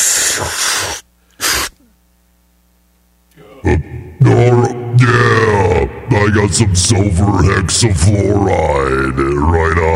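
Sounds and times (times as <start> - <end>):
gas hissing out of a balloon while inhaled: 0.0 - 1.8
speech: 0.4 - 1.0, 3.6 - 5.0, 6.2 - 9.9.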